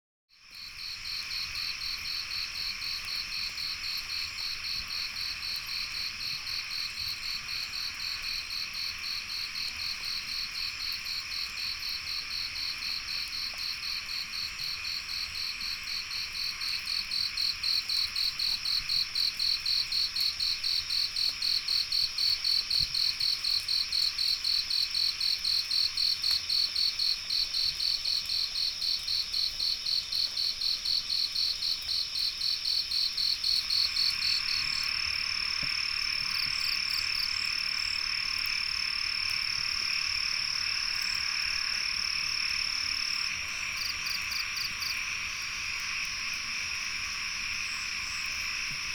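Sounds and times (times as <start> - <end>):
frogs in Sen Monorom Cambodia: 0.3 - 48.9
insects in Sen Monorom Cambodia: 0.3 - 48.9.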